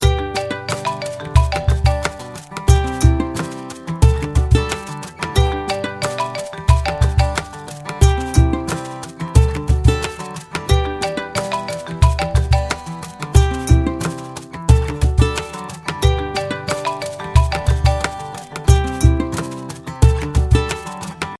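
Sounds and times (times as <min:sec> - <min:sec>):
iPhone 12 Pro Max marimba tone: 0:00.0 - 0:21.0.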